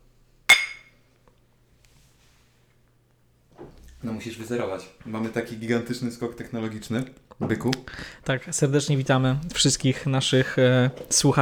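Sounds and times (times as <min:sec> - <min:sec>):
glasses clinking in a toast: 0:00.5 - 0:01.0
speech: 0:04.0 - 0:11.3.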